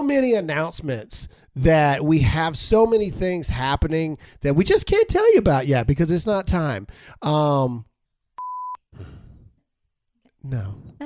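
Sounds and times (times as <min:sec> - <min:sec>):
speech: 0:00.1 - 0:07.9, 0:10.4 - 0:11.0
high-pitched censor bleep: 0:08.4 - 0:08.8.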